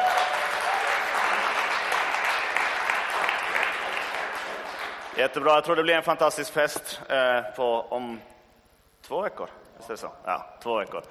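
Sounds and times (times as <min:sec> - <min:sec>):
audience applause: 0:00.0 - 0:05.2
speech: 0:05.2 - 0:08.3, 0:09.0 - 0:11.1.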